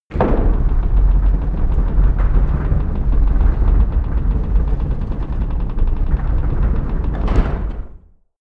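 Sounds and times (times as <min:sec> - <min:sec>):
large wooden gate opening: 0:00.1 - 0:08.2.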